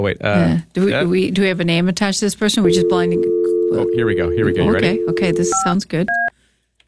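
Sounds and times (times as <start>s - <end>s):
speech: 0.0s - 6.2s
telephone keypad tones from dialing a number: 2.7s - 6.3s.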